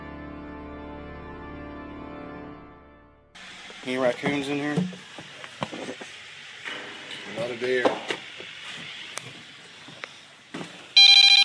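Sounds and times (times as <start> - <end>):
speech: 3.8 - 5.4, 7.5 - 8.1
mobile phone ringtone: 11.0 - 11.4.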